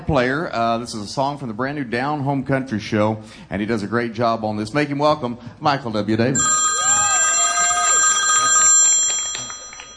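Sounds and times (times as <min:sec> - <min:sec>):
speech: 0:00.1 - 0:06.5
telephone bell ringing with a bright metallic trill: 0:06.4 - 0:09.9.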